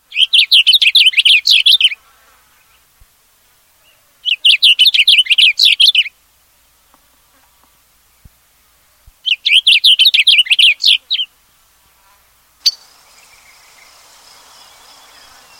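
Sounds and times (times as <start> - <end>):
blue grosbeak singing in spring: 0.0 - 2.0, 3.8 - 6.1, 9.2 - 11.3, 12.6 - 15.5.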